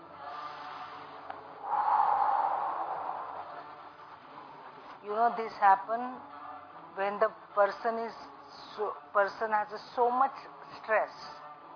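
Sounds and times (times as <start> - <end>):
person exhaling slowly through the mouth: 1.6 - 3.8
speech: 5.0 - 6.4, 7.0 - 11.4.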